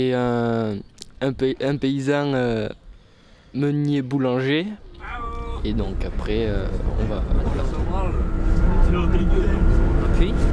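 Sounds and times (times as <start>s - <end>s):
speech: 0.0s - 2.8s, 3.6s - 10.5s
road noise inside a moving bus: 4.8s - 10.5s
low engine rumble inside a moving bus: 4.9s - 10.5s.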